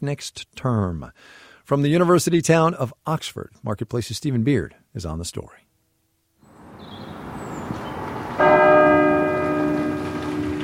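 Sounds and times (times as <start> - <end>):
speech: 0.0 - 5.6
chapel bell ringing across college grounds: 8.4 - 10.6.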